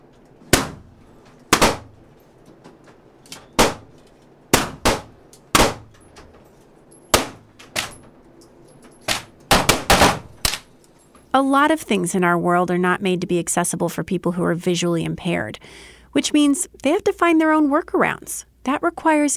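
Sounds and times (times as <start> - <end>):
gunshots at a shooting range fired on a target: 0.5 - 0.8, 1.5 - 2.0, 3.6 - 3.9, 4.6 - 5.9, 7.2 - 7.9, 9.1 - 10.7
speech: 11.4 - 19.3.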